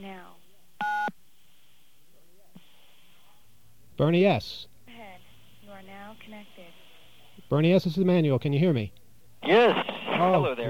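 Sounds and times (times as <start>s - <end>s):
touch-tone telephone keypad beep for the digit nine: 0.8s - 1.1s
speech: 4.0s - 4.7s, 7.4s - 10.6s.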